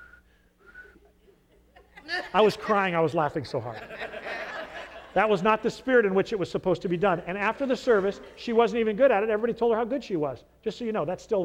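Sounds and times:
person whistling a wavering melody during a church offertory: 0.0 - 1.0
low hum: 0.0 - 11.4
laughter: 1.1 - 5.9, 7.0 - 9.0
speech: 2.3 - 4.1, 5.2 - 11.4.

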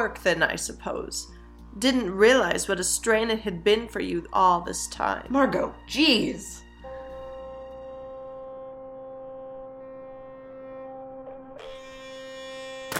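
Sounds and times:
speech: 0.0 - 6.6
motorized electric toothbrush buzzing: 6.8 - 12.9.

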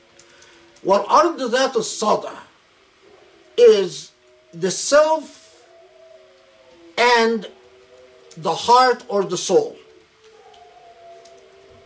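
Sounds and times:
speech: 0.8 - 2.5, 3.6 - 5.4, 7.2 - 7.6, 8.4 - 9.8
dogs howling: 2.7 - 11.8.

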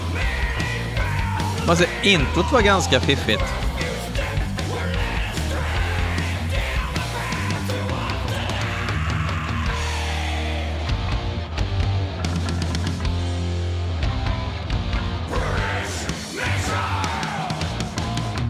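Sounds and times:
man screaming hoarsely in a recorded song intro: 0.0 - 10.7, 15.5 - 17.8
loud dense music with a pounding low end: 0.0 - 18.4
speech: 1.7 - 3.7.

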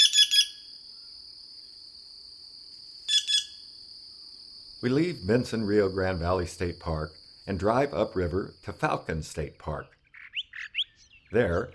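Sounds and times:
green jay giving resonant ringing notes in the lower Rio Grande Valley, Texas: 0.0 - 0.7, 3.1 - 3.7, 9.9 - 11.7
continuous high-pitched insect hum: 0.0 - 11.7
speech: 4.8 - 10.0, 11.3 - 11.7.

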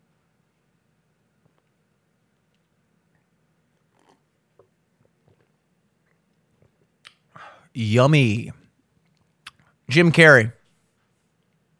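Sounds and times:
swallowing and gulping beer: 3.1 - 7.2
speech: 7.8 - 8.6, 10.0 - 10.6.

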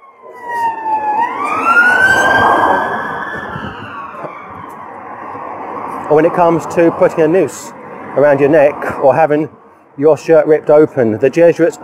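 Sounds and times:
police car siren wailing: 0.0 - 6.7
traffic rumble: 0.0 - 11.8
speech: 6.1 - 11.8.

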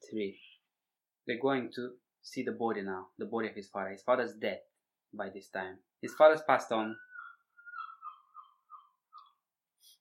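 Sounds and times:
speech: 0.1 - 0.5, 1.3 - 7.1
seagulls calling with harsh falling cries: 6.8 - 9.4
brief high chirp: 6.8 - 9.5.

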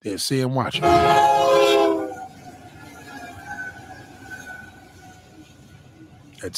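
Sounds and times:
speech: 0.0 - 2.0
train passing on the track: 0.5 - 6.5
train horn blast: 0.7 - 2.6.

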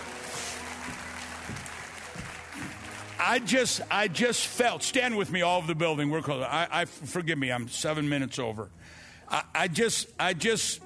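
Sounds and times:
audience applauding: 0.0 - 4.5
speech: 3.2 - 10.8.

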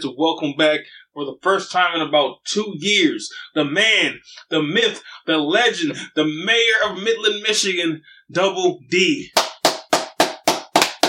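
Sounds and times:
speech: 0.0 - 9.4
hands clapping: 9.3 - 11.0.

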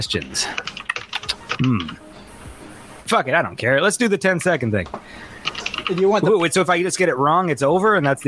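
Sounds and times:
speech: 0.0 - 0.7, 1.6 - 2.1, 3.1 - 8.2
typing on a computer keyboard: 0.5 - 2.0, 5.4 - 6.2.

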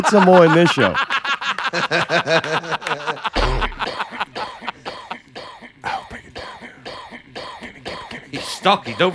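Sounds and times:
speech: 0.0 - 1.1, 1.7 - 3.2, 8.6 - 9.1
laughter: 0.0 - 6.0
person clearing throat: 3.3 - 9.1
person coughing: 3.3 - 9.1.

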